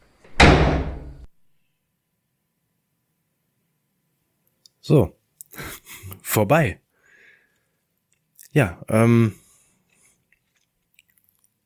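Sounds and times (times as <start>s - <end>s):
heavy cell door slamming shut: 0.3s - 1.2s
speech: 4.8s - 5.6s, 6.3s - 6.8s, 8.5s - 9.4s.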